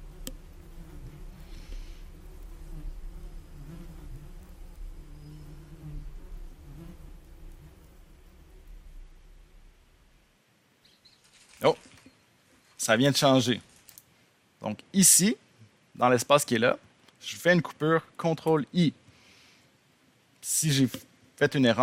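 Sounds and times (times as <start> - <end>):
bees buzzing: 0.0 - 10.2
faint hiss: 0.0 - 21.8
speech: 11.6 - 11.8, 12.8 - 13.7, 15.0 - 15.4, 16.0 - 19.0, 20.4 - 21.8.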